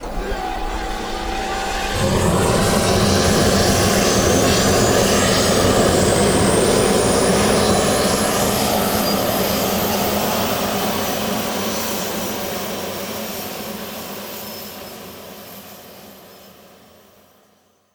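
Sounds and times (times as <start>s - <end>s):
L-39 aircraft engine starter start: 0.0s - 16.0s.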